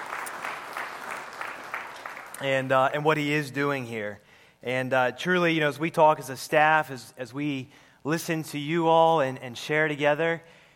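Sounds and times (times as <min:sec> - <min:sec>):
church congregation applauding: 0:00.0 - 0:02.4
speech: 0:02.4 - 0:10.6.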